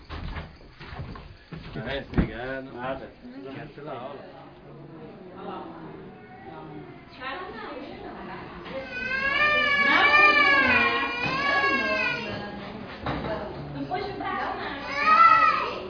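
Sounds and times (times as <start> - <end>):
child crying and wailing while a blood sample is taken: 8.7 - 12.5, 14.7 - 15.8.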